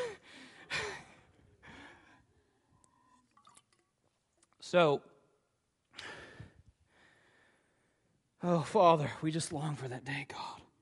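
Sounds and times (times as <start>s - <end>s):
faint liquid drips: 2.7s - 4.6s
person sipping water: 2.8s - 4.5s
speech: 4.7s - 5.1s, 8.4s - 10.4s.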